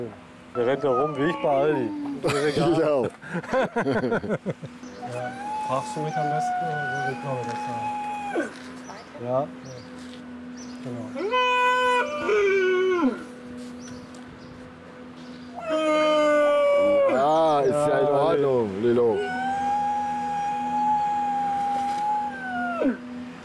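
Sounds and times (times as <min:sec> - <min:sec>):
speech: 0:00.0 - 0:08.6, 0:09.2 - 0:09.7, 0:10.8 - 0:13.2, 0:18.3 - 0:19.3
laughter: 0:02.0 - 0:05.2
seal pups crying in long wavering wails: 0:05.0 - 0:08.8, 0:11.2 - 0:13.3, 0:15.5 - 0:17.5, 0:19.1 - 0:23.1.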